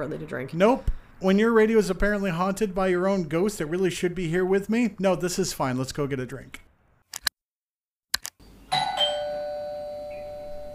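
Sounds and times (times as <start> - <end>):
speech: 0.0 - 6.6
sharp clicks: 7.1 - 7.4, 8.1 - 8.4
doorbell with bright two-note chime: 8.7 - 10.7.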